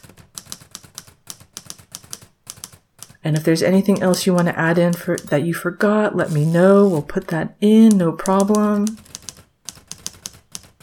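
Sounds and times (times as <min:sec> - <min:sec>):
person typing up notes on a keyboard: 0:00.0 - 0:05.3, 0:07.8 - 0:10.8
speech: 0:03.2 - 0:09.1.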